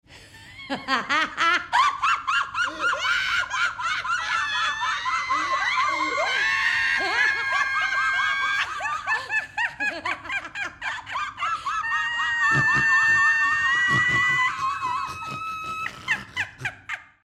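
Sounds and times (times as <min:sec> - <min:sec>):
individual laughs: 0:00.6 - 0:17.2.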